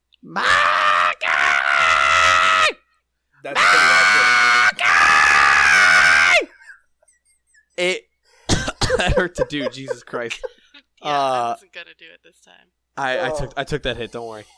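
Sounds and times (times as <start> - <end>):
speech: 0.2 - 0.7, 9.1 - 14.5
person imitating a shrill grating scream: 0.3 - 2.8, 3.5 - 6.6
laughter: 3.5 - 4.7, 6.4 - 7.8, 8.8 - 10.9.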